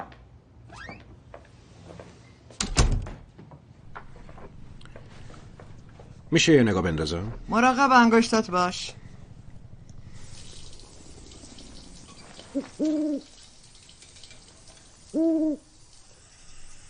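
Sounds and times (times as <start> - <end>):
soft steady hiss: 3.8 - 16.8
speech: 6.3 - 9.0
owl hooting: 12.5 - 13.3, 15.1 - 15.7.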